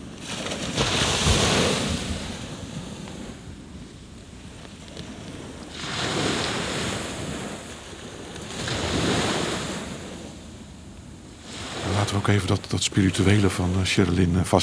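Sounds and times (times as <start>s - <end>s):
surf rolling onto a beach: 0.0s - 14.6s
speech: 12.3s - 14.6s.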